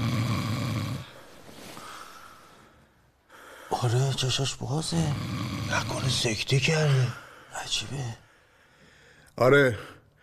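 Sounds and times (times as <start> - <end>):
man snoring in his sleep: 0.0 - 1.2, 5.0 - 6.4
speech: 3.7 - 8.2, 9.4 - 9.9.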